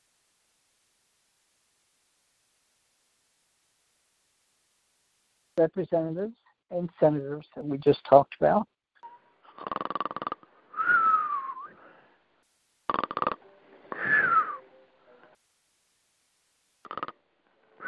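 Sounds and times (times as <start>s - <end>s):
speech: 5.6s - 8.7s
person snoring: 9.5s - 10.5s, 12.9s - 14.5s, 16.9s - 17.1s.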